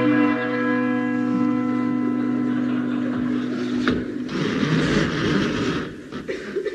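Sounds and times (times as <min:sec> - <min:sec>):
large deep doorbell ringing at the door of a manor: 0:00.0 - 0:04.2
laughter: 0:01.8 - 0:05.5.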